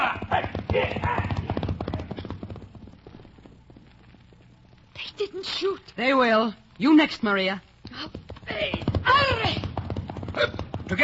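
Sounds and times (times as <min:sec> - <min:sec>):
hooves clip-clopping: 0:00.0 - 0:05.0, 0:07.8 - 0:11.0
horses galloping: 0:00.0 - 0:05.1, 0:07.8 - 0:11.0
speech: 0:05.2 - 0:09.6, 0:10.4 - 0:11.0.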